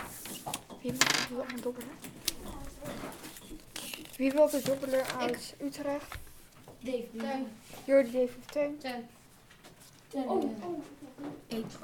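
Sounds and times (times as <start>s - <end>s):
speech: 0.8s - 6.2s, 6.8s - 9.2s, 10.1s - 11.8s
dice rolling on a hard tabletop: 0.9s - 1.6s
people murmuring: 10.2s - 11.4s.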